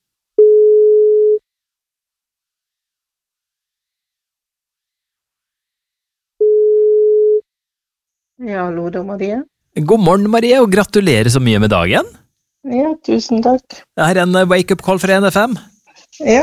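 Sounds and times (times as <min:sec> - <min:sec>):
telephone ringback tone while a radio station calls a listener: 0:00.4 - 0:01.4, 0:06.4 - 0:07.4
speech: 0:08.4 - 0:16.4.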